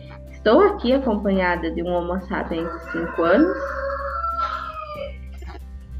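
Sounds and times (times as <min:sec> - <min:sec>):
speech: 0:00.4 - 0:03.8
domestic roosters crowing: 0:02.5 - 0:05.2.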